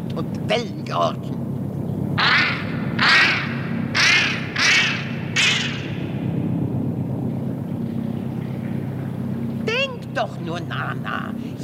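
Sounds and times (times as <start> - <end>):
speech: 0.5 - 1.3, 10.3 - 11.6
steady low rumble: 1.5 - 9.7
geese cackling with nasal harmonic honks: 2.2 - 6.1.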